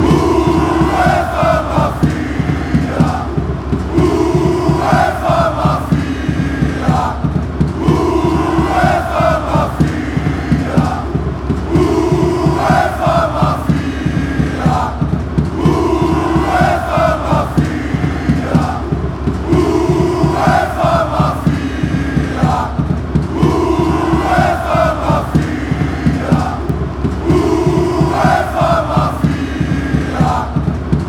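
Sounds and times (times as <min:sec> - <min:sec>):
people chanting in Greece: 0:00.0 - 0:31.0.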